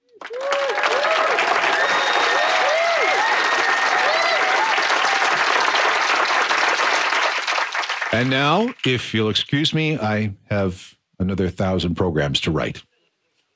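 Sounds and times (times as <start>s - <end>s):
audience cheers and whistles: 0.0s - 6.0s
audience applause: 0.0s - 9.0s
speech: 8.2s - 12.9s.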